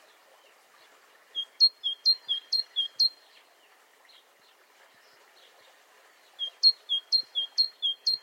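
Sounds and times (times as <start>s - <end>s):
great tit Parus major singing: 1.4s - 3.2s, 6.4s - 8.2s.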